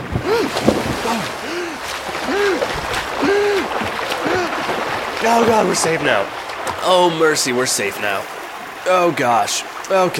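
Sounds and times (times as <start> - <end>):
water sloshing and splashing as people jump into a river: 0.0 - 10.1
people crying out strained: 0.2 - 4.8
speech: 5.2 - 10.1.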